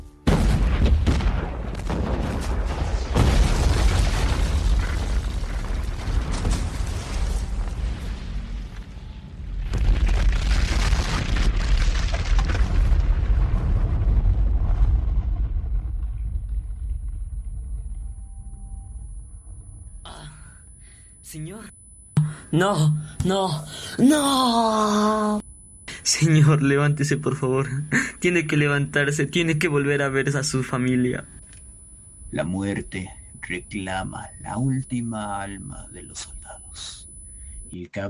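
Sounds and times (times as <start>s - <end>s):
wave of explosions with sustained rumbling and deep booms: 0.2s - 18.0s
crackling debris: 0.2s - 18.2s
speech: 22.5s - 25.4s, 26.2s - 31.4s, 32.3s - 37.0s, 37.7s - 38.0s.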